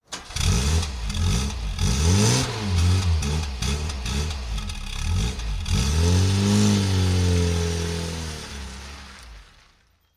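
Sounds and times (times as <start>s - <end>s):
car engine revving: 0.2s - 9.8s.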